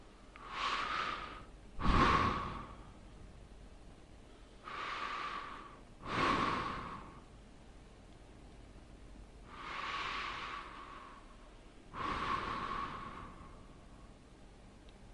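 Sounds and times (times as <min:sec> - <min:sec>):
deep breathing: 0:00.0 - 0:03.2, 0:04.3 - 0:07.4, 0:09.4 - 0:14.3.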